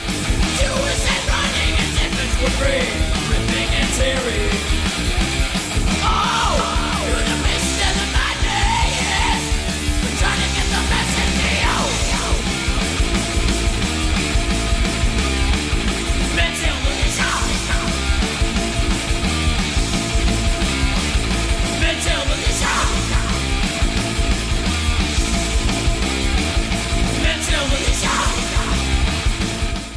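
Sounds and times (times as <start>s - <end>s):
driving distorted guitars in a thrash metal song: 0.0s - 29.9s
pounding drums in a thrash metal song: 0.0s - 29.9s
shouted vocals in a thrash metal song: 0.4s - 4.8s, 5.9s - 12.7s, 16.3s - 18.2s, 21.7s - 23.8s, 27.1s - 29.1s.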